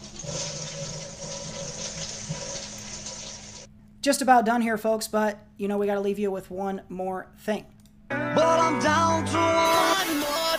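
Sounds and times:
toilet flushing: 0.0 - 3.7
speech: 4.0 - 10.4.

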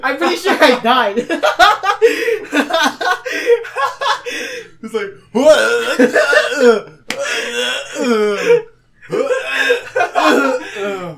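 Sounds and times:
speech: 0.0 - 6.9
laughter: 0.1 - 4.7, 5.6 - 11.1
person gasping: 4.2 - 4.8, 6.6 - 11.1
person choking and coughing: 5.5 - 11.1.

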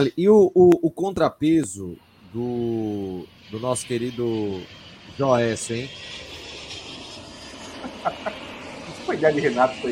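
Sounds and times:
speech: 0.0 - 6.3, 8.0 - 8.4, 9.1 - 9.8
airplane roar passing overhead: 0.0 - 9.8
laughter: 7.8 - 8.5.

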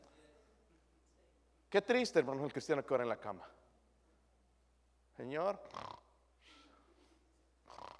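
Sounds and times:
speech: 1.7 - 3.6, 5.2 - 6.0
voice imitating snoring: 5.7 - 6.1, 7.7 - 7.9.

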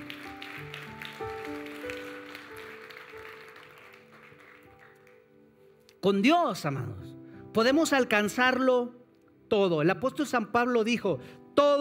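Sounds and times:
crowd clapping: 0.0 - 5.4
speech: 6.0 - 11.8.

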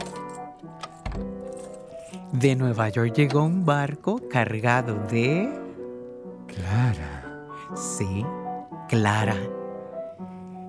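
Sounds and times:
set of keys dropping and clattering on the floor: 0.0 - 2.5
steady music: 0.0 - 10.6
speech: 2.3 - 5.6, 7.7 - 9.6.

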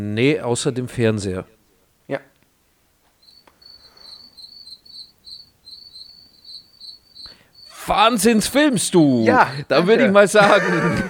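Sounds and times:
speech: 0.0 - 2.3, 7.9 - 11.0
cricket chirping in pulsed bursts: 2.8 - 9.3
laughter: 9.4 - 11.0.

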